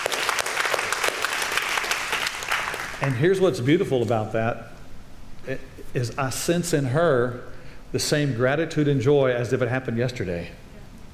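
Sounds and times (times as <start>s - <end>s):
crowd applauding: 0.0s - 3.2s
speech: 3.0s - 4.8s, 5.5s - 10.6s.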